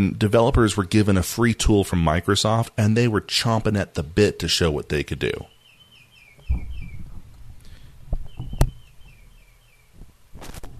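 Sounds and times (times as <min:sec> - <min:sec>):
speech: 0:00.0 - 0:05.6
small bird chirping: 0:05.4 - 0:10.0
low thumping: 0:06.4 - 0:10.7
rustling: 0:06.4 - 0:10.7.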